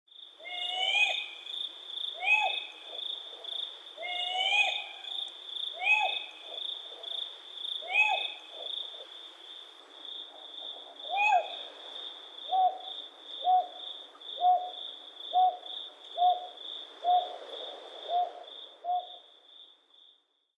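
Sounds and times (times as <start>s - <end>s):
Northern Boobook calling in Izu: 0.4s - 1.5s, 2.1s - 7.2s, 7.8s - 9.0s, 11.1s - 11.6s, 12.5s - 13.8s, 14.4s - 17.4s, 18.1s - 19.2s.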